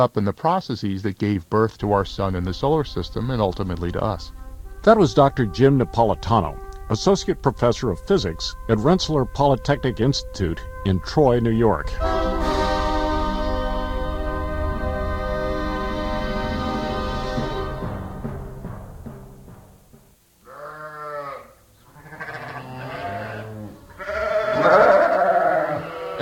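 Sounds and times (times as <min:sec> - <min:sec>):
speech: 0:00.0 - 0:12.2
sustained droning tone: 0:01.7 - 0:20.1
sheep and lambs bleating: 0:20.4 - 0:26.1.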